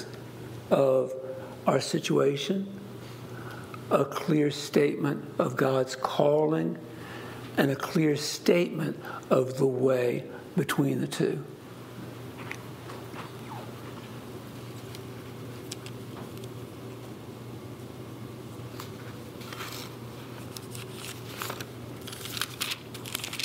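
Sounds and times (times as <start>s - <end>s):
speech: 0.7s - 2.8s, 3.9s - 6.9s, 7.6s - 11.5s
sheets of paper shuffled and rustled: 18.7s - 23.4s.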